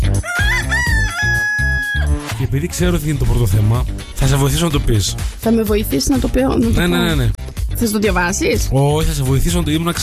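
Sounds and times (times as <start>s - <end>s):
music with steady thumping beat and heavy bass: 0.0s - 1.5s, 2.1s - 10.0s
rooster crowing with wavering pitch: 0.2s - 2.3s
speech: 2.5s - 10.0s.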